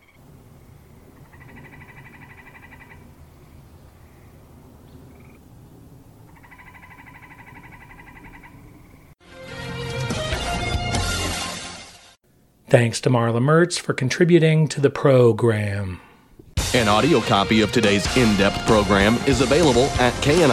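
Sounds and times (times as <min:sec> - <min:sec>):
tree frogs trilling in woodlands: 0:00.0 - 0:05.5, 0:06.2 - 0:09.2
loud music: 0:09.2 - 0:12.2, 0:16.6 - 0:20.5
speech: 0:12.7 - 0:16.1, 0:16.7 - 0:20.5.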